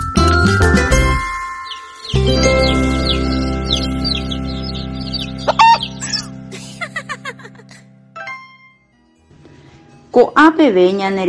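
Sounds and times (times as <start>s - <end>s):
baby chicks peeping: 0.2s - 7.5s
laughter: 6.1s - 7.9s
speech: 10.5s - 11.2s.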